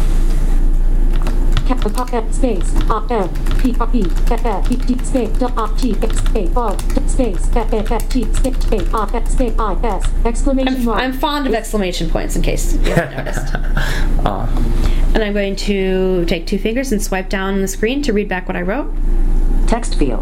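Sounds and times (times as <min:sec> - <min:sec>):
typing on a keyboard: 0:01.1 - 0:10.1
speech: 0:01.8 - 0:20.2
laughter: 0:12.8 - 0:14.1.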